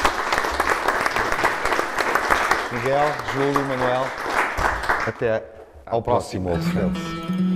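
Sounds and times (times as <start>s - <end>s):
audience applause: 0.0s - 5.4s
speech: 2.8s - 4.2s, 5.0s - 7.4s.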